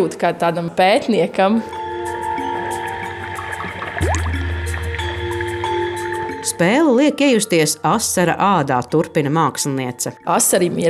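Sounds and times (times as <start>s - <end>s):
speech: 0.0s - 1.8s, 6.6s - 10.8s
steady droning underwater tones: 2.1s - 9.0s.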